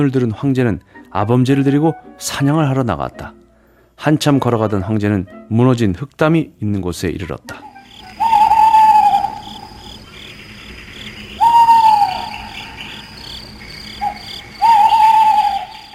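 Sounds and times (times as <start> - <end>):
speech: 0.0 - 3.4, 4.0 - 7.7
owl hooting: 7.6 - 15.9
chorus of crickets and insects buzzing: 7.7 - 15.9.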